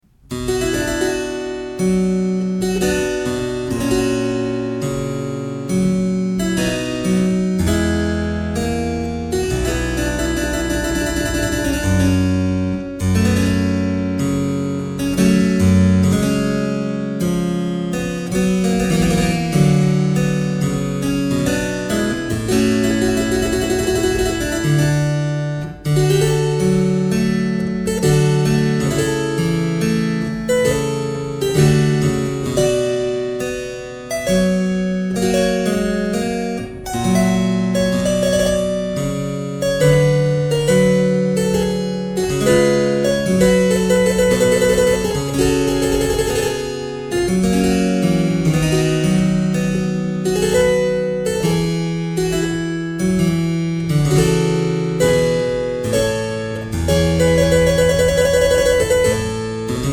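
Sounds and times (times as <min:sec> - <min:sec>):
harpsichord 8' register playing a sarabande: 0:00.3 - 0:59.9.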